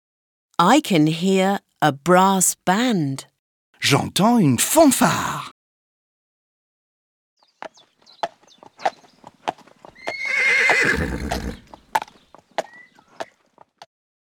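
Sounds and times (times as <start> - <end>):
speech: 0.6 - 5.6
horse hooves clip-clopping: 7.4 - 13.9
horse neighing: 8.4 - 13.3.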